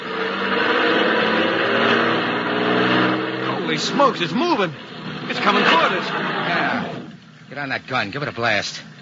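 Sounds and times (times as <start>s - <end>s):
truck engine accelerating hard to squeeze past a blockage on the road shoulder: 0.0s - 7.2s
speech: 3.8s - 8.9s.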